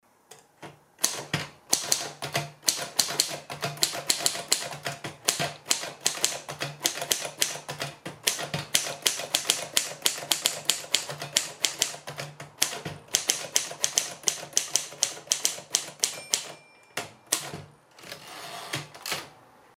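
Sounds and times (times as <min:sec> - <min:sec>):
Triumph Gabriele typewriter typing: 0:01.0 - 0:19.4.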